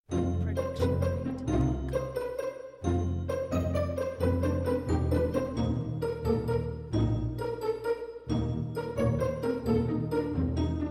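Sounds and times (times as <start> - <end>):
pizzicato ident: 0.1 - 10.9.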